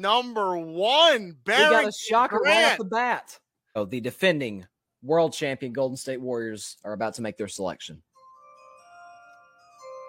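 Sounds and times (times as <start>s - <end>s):
speech: 0.0s - 8.1s
soft sustained chimes ringing: 8.2s - 10.0s.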